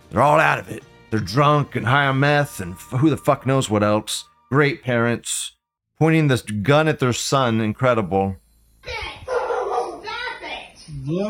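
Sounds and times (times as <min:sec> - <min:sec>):
speech: 0:00.1 - 0:09.2, 0:10.9 - 0:11.2
dogs barking and yelping excitedly: 0:09.2 - 0:10.0.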